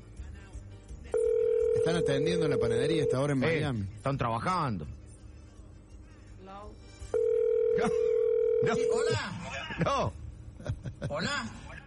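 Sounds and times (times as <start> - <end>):
steady electronic telephone tone while placing a call: 1.2 - 3.5, 7.2 - 9.2
speech: 1.9 - 5.0, 7.8 - 10.2, 11.0 - 11.7.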